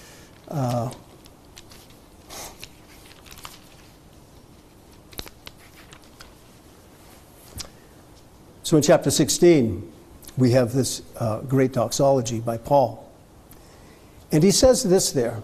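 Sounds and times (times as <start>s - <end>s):
paper pages held with paper clips flipping: 0.3s - 7.8s
speech: 0.5s - 1.0s, 8.7s - 13.0s, 14.3s - 15.4s.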